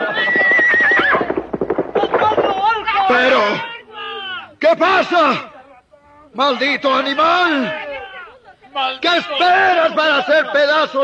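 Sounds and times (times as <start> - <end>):
horse whinnying: 0.0 - 2.5
galloping horse hooves charging: 0.0 - 3.6
speech: 4.6 - 5.5, 6.3 - 7.8, 8.8 - 11.0.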